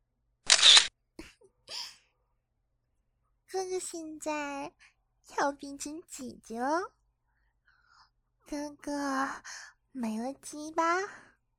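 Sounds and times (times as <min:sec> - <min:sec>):
camera shutter firing as a photo is taken: 0:00.5 - 0:00.9
speech: 0:03.6 - 0:07.0, 0:08.5 - 0:11.2.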